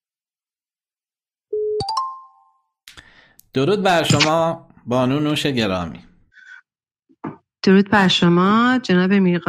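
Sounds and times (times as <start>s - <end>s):
outgoing call ringback tone: 1.6s - 2.6s
speech: 3.5s - 6.1s, 7.6s - 9.4s.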